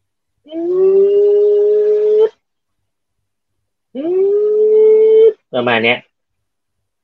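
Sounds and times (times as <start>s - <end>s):
voice imitating eerie ghostly bathroom moan: 0.5s - 2.3s, 3.9s - 5.4s
speech: 5.6s - 6.1s.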